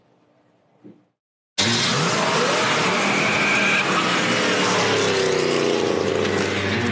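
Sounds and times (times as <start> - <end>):
muscle car engine revving and accelerating: 1.6 - 6.8.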